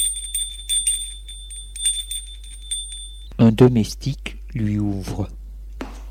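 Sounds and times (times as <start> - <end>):
electric doorbell ringing at front door: 0.0 - 3.4
speech: 3.4 - 5.4.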